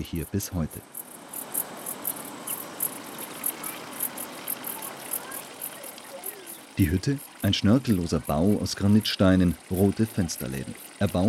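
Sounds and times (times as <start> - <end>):
speech: 0.0 - 1.1, 6.8 - 11.2
crickets chirping: 0.0 - 11.2
fountain splashing beside the toilet hut of a granite mountain hut in a larch forest: 2.3 - 11.2.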